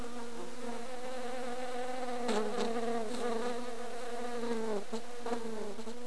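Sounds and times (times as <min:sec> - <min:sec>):
fly buzzing: 0:00.0 - 0:06.0.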